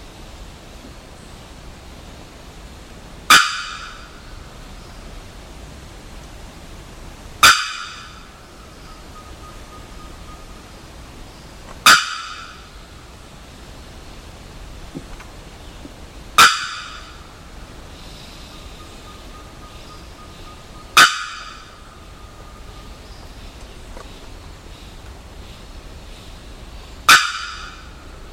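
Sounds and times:
bearded bellbird loud metallic bocks: 3.3s - 4.2s, 7.4s - 8.4s, 11.8s - 12.8s, 16.4s - 17.4s, 20.9s - 22.0s, 27.0s - 28.1s.

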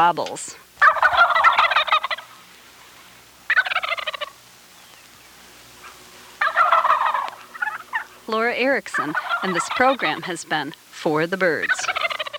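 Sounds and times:
speech: 0.0s - 1.2s, 8.3s - 12.1s
wild turkey gobbling: 0.8s - 10.6s, 11.6s - 12.3s.

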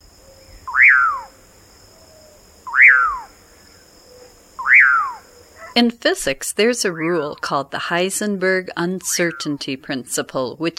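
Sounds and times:
Common Pauraque calls: 0.6s - 1.3s, 2.7s - 3.4s, 4.6s - 5.8s
speech: 5.8s - 10.7s.

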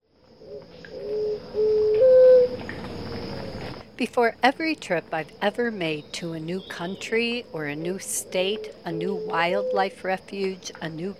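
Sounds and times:
faint steady high-pitched hum: 0.2s - 11.1s
West Peruvian dove cooing: 0.4s - 2.6s, 7.6s - 10.0s
speech: 4.0s - 11.1s.

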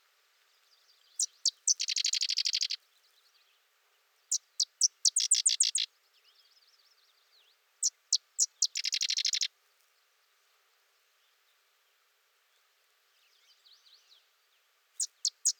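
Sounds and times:
sedge wren song: 0.5s - 3.2s, 4.3s - 9.5s, 15.0s - 15.5s.

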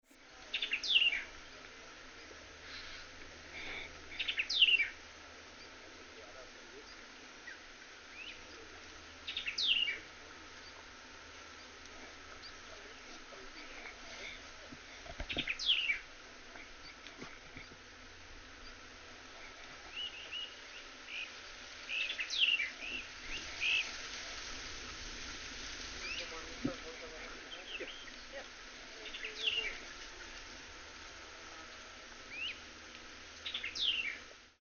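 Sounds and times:
White-eyed Vireo singing: 0.0s - 1.3s, 4.1s - 5.0s, 6.8s - 10.8s, 15.2s - 16.1s, 19.9s - 24.0s, 26.0s - 26.4s, 27.5s - 28.4s, 29.0s - 30.3s, 32.3s - 32.7s, 33.4s - 34.3s.

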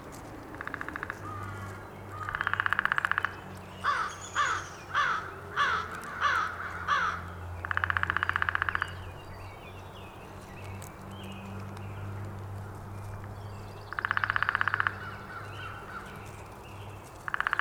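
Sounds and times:
Downy woodpecker drumming: 0.0s - 17.5s
harsh caws from another bird: 0.6s - 9.0s, 13.9s - 16.5s, 17.2s - 17.5s.

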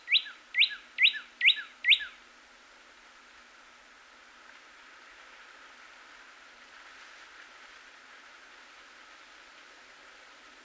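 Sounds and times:
Northern cardinal whistled song: 0.1s - 2.1s.

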